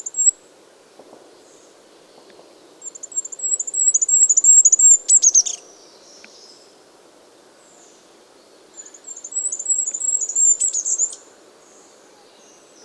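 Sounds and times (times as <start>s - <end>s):
goldcrest singing: 0.0s - 0.4s, 1.4s - 6.8s, 7.5s - 12.8s.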